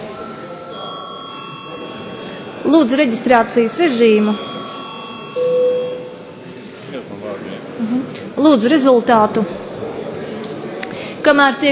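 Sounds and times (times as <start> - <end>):
parliamentary chamber bell ringing before registration of deputies' attendance: 0.0 - 6.4
speech: 2.6 - 4.5, 8.5 - 9.6, 11.2 - 11.7.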